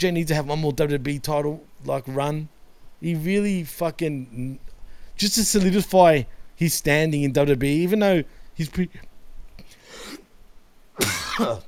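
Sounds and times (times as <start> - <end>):
speech: 0.0 - 4.6, 5.2 - 9.1, 11.0 - 11.6
person coughing rough throaty coughs almost like a sneeze: 11.0 - 11.6.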